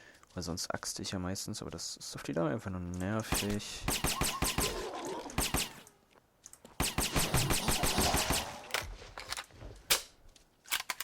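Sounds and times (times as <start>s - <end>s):
speech: 0.4s - 4.6s
gunfire from a video game in rapid bursts: 3.3s - 5.9s, 6.8s - 8.7s.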